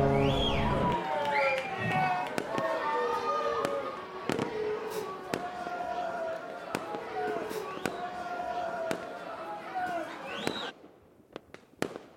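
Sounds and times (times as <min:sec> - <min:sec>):
fireworks with whistling tones: 0:00.1 - 0:05.7, 0:06.5 - 0:10.8
fireworks for a birthday party bursting over a three-masted ship: 0:03.6 - 0:08.2, 0:08.8 - 0:09.2, 0:09.8 - 0:12.1.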